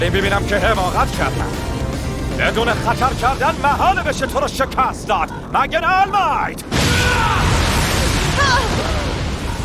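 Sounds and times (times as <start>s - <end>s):
speech: 0.0s - 1.6s, 2.4s - 7.6s
big explosion blast roar: 6.6s - 9.6s.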